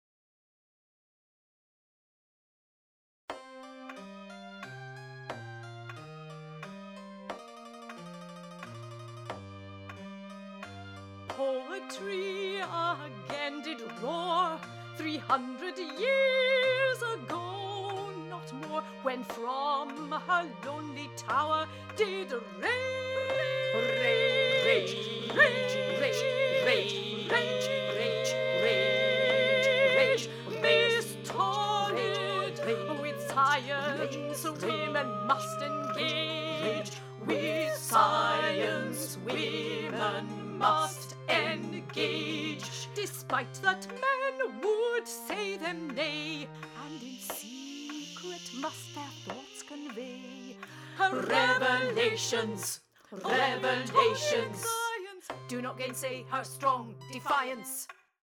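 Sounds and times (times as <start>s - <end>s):
all voices singing a song verse: 11.4s - 57.8s.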